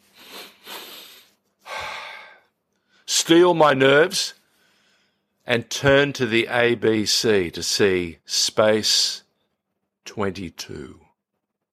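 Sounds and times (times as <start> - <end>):
person taking a deep breath: 0.0 - 3.1
speech: 3.2 - 4.4, 5.5 - 9.2, 10.1 - 11.0.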